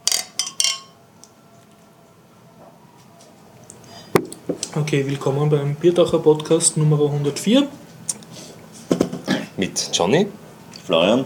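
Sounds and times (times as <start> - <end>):
glasses clinking in a toast: 0.0 - 1.0
speech: 4.7 - 7.8, 9.8 - 11.2.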